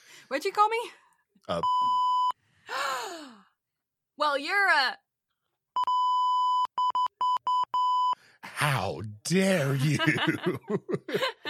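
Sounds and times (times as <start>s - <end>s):
speech: 0.3s - 2.0s, 4.2s - 5.0s, 8.6s - 11.4s
loud steady censor bleep tone: 1.6s - 2.4s, 5.8s - 8.2s
laughter: 9.5s - 11.4s.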